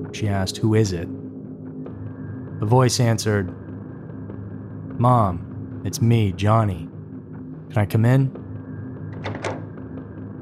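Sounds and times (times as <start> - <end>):
speech: 0.1 - 1.2, 2.6 - 3.6, 5.0 - 6.9, 7.7 - 8.4
firm knocks on an apartment door in Iowa: 9.2 - 9.8.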